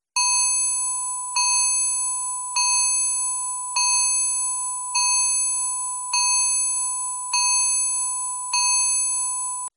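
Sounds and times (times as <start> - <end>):
Samsung X140 standard mobile phone ringtone: 0.2 - 9.7.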